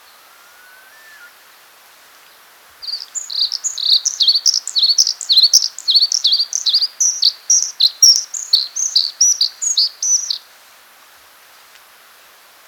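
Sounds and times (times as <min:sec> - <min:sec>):
blue-capped redstart singing high sharp chirping notes: 0:02.8 - 0:10.4.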